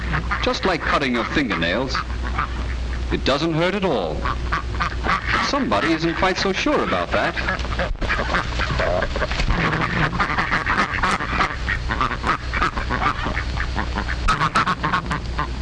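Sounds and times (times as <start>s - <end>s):
farm ducks quacking: 0.0s - 15.5s
speech: 0.5s - 4.9s, 5.5s - 8.0s.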